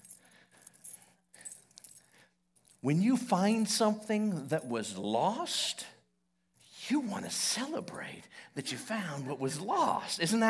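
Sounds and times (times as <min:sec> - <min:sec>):
keys jangling as they are found in a couch: 0:00.0 - 0:04.8, 0:06.6 - 0:08.2
speech: 0:02.8 - 0:05.9, 0:06.9 - 0:10.4.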